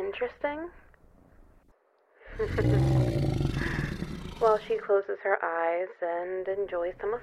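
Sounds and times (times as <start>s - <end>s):
speech: 0.1s - 0.8s, 2.3s - 3.2s, 4.4s - 7.2s
female creature's deep cat-like roar: 2.3s - 4.7s.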